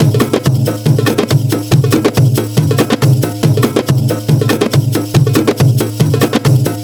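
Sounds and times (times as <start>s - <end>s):
drum percussion: 0.0s - 6.8s.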